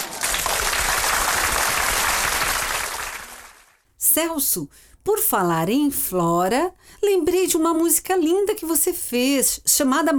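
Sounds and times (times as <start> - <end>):
crowd applauding a guest on a radio programme: 0.0 - 3.8
speech: 4.2 - 10.1.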